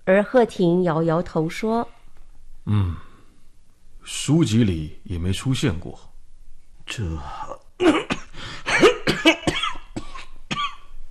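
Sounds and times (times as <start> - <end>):
speech: 0.1 - 2.0, 2.6 - 3.1, 4.0 - 6.1, 6.9 - 8.1
breathy throaty sounds: 2.7 - 3.4
violent coughing: 7.8 - 10.9.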